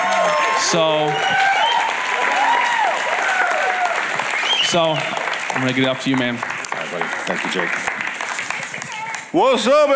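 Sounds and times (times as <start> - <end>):
audience applause: 0.0 - 9.3
speech: 0.7 - 1.7, 4.7 - 7.9, 9.3 - 9.9
voices calling and chattering: 4.6 - 9.4.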